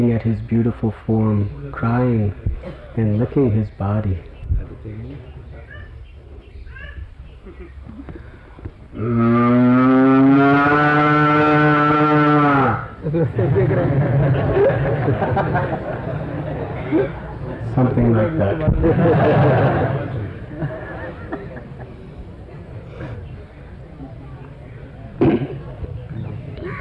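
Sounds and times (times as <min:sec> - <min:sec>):
speech: 0:00.0 - 0:05.3, 0:09.0 - 0:09.7, 0:13.1 - 0:16.1, 0:16.9 - 0:20.0
quiet murmuring: 0:00.0 - 0:09.0, 0:13.0 - 0:26.7
low bustle: 0:00.0 - 0:26.7
laughter: 0:07.4 - 0:08.0, 0:13.0 - 0:22.2
cow mooing: 0:09.0 - 0:12.9.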